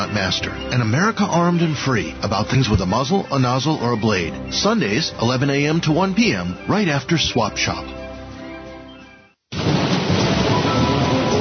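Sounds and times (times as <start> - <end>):
speech: 0.1 - 8.0
heavy steady downpour of rain: 9.5 - 11.3
low thunder rumble: 9.5 - 11.3.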